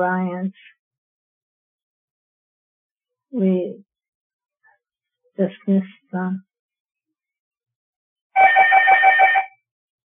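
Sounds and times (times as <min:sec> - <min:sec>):
speech: 0:00.0 - 0:00.8, 0:03.3 - 0:03.9, 0:05.4 - 0:06.5
telephone ringing: 0:08.4 - 0:09.6.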